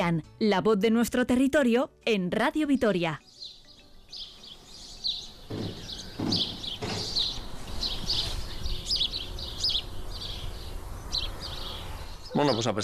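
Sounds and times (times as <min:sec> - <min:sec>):
speech: 0:00.0 - 0:03.4, 0:12.4 - 0:12.8
birds trilling and chirping in spring on a cold day: 0:02.8 - 0:12.8
dull thuds: 0:05.4 - 0:07.4.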